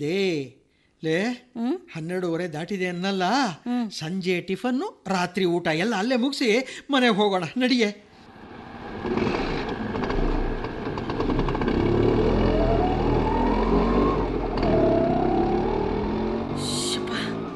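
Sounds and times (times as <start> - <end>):
speech: 0.0 - 8.1
constant road rumble: 8.2 - 17.5
auto rickshaw engine whining during a ride: 8.3 - 17.5.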